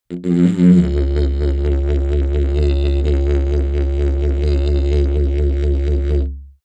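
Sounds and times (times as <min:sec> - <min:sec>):
didgeridoo wobble sequence: 0:00.1 - 0:06.6.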